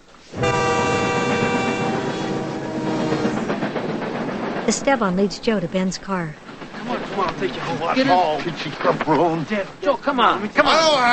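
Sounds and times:
train speeding down the tracks: 0.0s - 11.0s
rumbling rail noise and rhythmic clatter: 0.0s - 11.1s
sustained horn-like harmonic drone of a train: 0.3s - 3.9s
speech: 4.7s - 6.4s, 7.2s - 11.1s.

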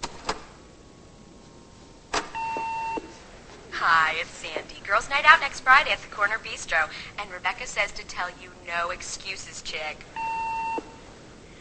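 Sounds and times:
phone being dialed to check messages, clicks: 2.4s - 3.1s
phone electronic beep: 2.4s - 3.1s, 10.2s - 11.0s
speech: 4.2s - 10.3s.

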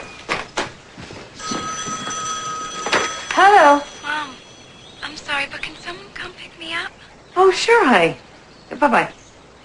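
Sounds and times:
clattering knocks: 1.4s - 3.4s
telephone ringing with a high electronic tone: 1.4s - 5.6s
speech: 3.4s - 3.9s, 6.6s - 8.2s, 8.8s - 9.2s.

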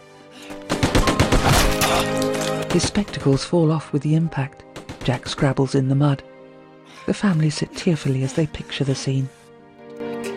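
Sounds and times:
rapid burst of gunfire: 0.5s - 2.0s, 4.8s - 5.4s
speech: 2.8s - 6.3s, 7.1s - 9.4s.

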